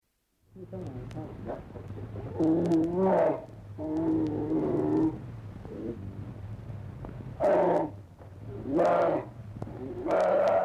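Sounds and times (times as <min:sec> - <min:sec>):
speech: 0:00.6 - 0:05.2
polar bear low rumbling growl: 0:01.5 - 0:06.4, 0:07.3 - 0:10.6
polar bear roaring in Tromsø: 0:02.3 - 0:06.0, 0:07.4 - 0:10.6.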